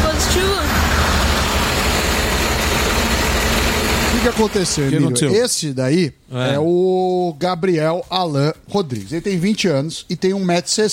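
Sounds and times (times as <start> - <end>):
truck engine idling: 0.0 - 5.0
speech: 4.2 - 10.9.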